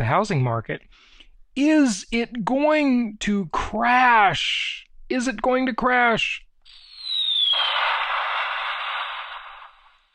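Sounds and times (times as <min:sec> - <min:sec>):
speech: 0:00.0 - 0:06.4
falling whistle of a dropping bomb: 0:06.7 - 0:10.1
loud sustained rushing explosion roar: 0:07.0 - 0:10.1.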